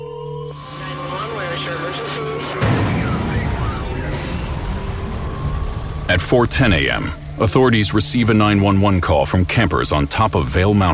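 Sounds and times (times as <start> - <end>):
rough rumbling background: 0.5 - 10.9
fire alarm blaring and warbling: 0.6 - 8.9
speech: 6.1 - 10.9.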